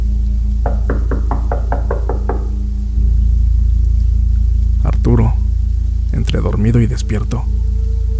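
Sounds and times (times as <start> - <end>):
steady low hum: 0.0 - 8.1
knocking on the door of a house: 0.6 - 2.6
speech: 6.4 - 7.6.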